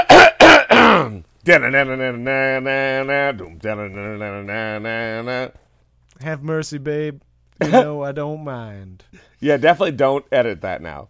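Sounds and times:
man clearing his throat: 0.0 - 1.2
man singing or humming long steady notes: 1.0 - 5.6
speech: 1.5 - 5.6, 6.2 - 11.0.

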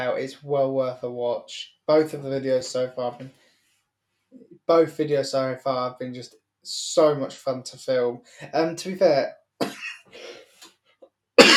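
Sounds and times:
speech: 0.0 - 3.4, 4.3 - 10.4
person coughing: 9.6 - 10.4, 11.4 - 11.5
soft breathy sounds: 10.1 - 10.7.

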